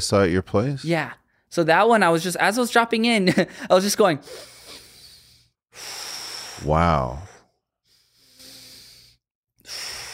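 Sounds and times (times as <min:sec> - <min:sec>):
speech: 0:00.0 - 0:04.8, 0:05.8 - 0:07.3
voice imitating slow deep breathing: 0:04.3 - 0:10.1.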